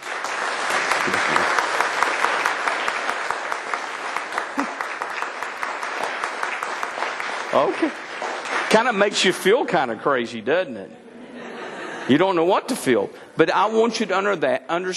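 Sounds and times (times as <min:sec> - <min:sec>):
large church audience standing and applauding: 0:00.0 - 0:09.6
laughter: 0:01.0 - 0:01.6, 0:04.4 - 0:05.0, 0:11.0 - 0:12.2
speech: 0:07.6 - 0:08.0, 0:08.7 - 0:11.1, 0:12.1 - 0:14.9.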